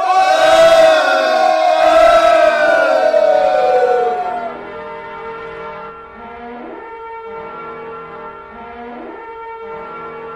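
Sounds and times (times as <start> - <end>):
large crowd of Israelites shouting battle cry: 0.0 - 4.6.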